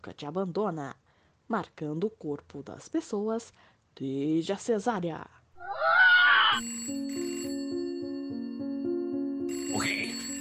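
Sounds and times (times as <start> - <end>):
speech: 0.0 - 5.7, 6.5 - 7.0
telephone ringing with an incoming call: 6.6 - 10.3.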